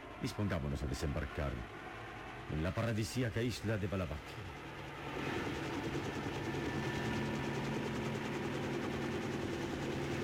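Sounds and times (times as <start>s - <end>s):
helicopter gaining altitude near an island at dawn: 0.0s - 10.2s
speech: 0.2s - 1.9s, 2.5s - 5.4s.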